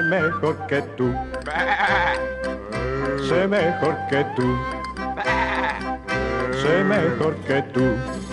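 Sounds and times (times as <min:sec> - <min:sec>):
speech: 0:00.1 - 0:02.3, 0:03.2 - 0:04.8, 0:06.6 - 0:08.2
sheep bleating: 0:01.5 - 0:03.5, 0:05.2 - 0:07.4.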